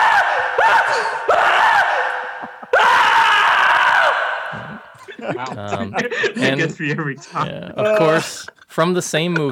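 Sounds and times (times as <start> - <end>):
man screaming in a movie clip: 0.0 - 4.9
laughter: 1.9 - 3.3, 4.5 - 8.4
speech: 5.3 - 9.4.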